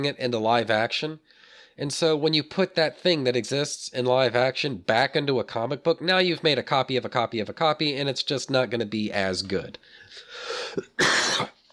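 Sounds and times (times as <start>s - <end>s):
speech: 0.0s - 11.5s
person coughing: 10.6s - 11.6s.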